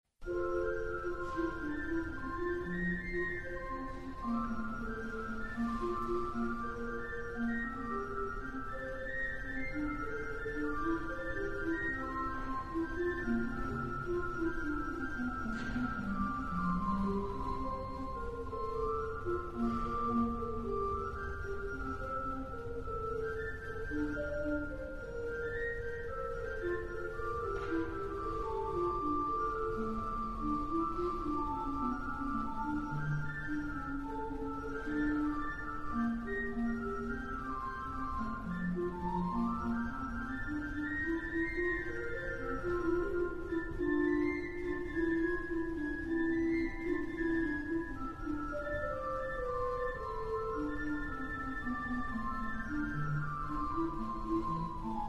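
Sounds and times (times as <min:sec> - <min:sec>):
flute piece: 0:00.2 - 0:55.0.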